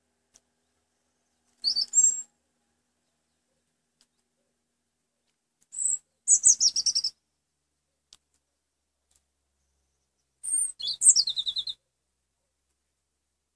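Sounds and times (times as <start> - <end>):
European robin singing: 0.5 - 2.3, 5.7 - 7.3, 9.5 - 11.8.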